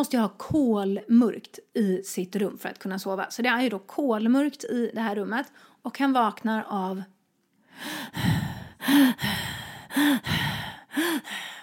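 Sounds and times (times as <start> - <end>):
speech: 0.0 - 7.2, 7.8 - 11.4
voice imitating heavy rasping breathing: 7.8 - 11.6.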